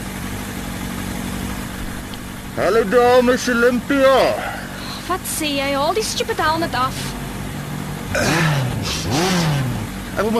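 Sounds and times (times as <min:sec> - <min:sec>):
fancy car engine revving: 0:00.0 - 0:10.3
speech: 0:02.6 - 0:04.5, 0:05.1 - 0:07.2, 0:08.1 - 0:09.4, 0:10.2 - 0:10.3.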